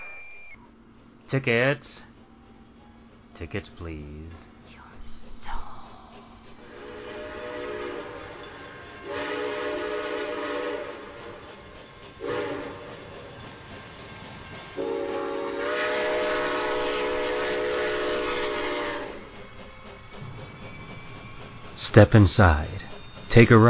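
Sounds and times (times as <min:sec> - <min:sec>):
speech: 0:01.3 - 0:02.1, 0:03.4 - 0:04.5, 0:21.9 - 0:22.8, 0:23.3 - 0:23.6
train rumbling on rails: 0:02.0 - 0:23.6
loud train horn blasts: 0:06.7 - 0:11.4, 0:12.2 - 0:12.9, 0:14.8 - 0:19.2.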